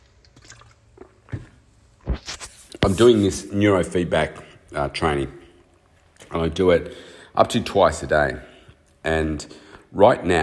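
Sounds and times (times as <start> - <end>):
sipping and swallowing water: 0.0 - 1.7
speech: 2.8 - 5.4, 6.3 - 10.4.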